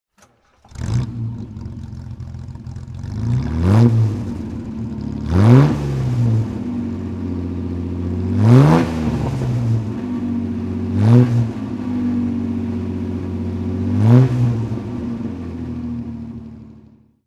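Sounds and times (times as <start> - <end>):
Austin-Healey 3000 Mk2A engine throttle revving: 0.2 - 16.9.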